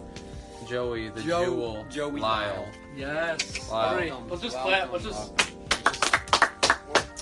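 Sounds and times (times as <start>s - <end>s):
speech: 0.7s - 5.6s
people clapping hands: 5.3s - 7.2s.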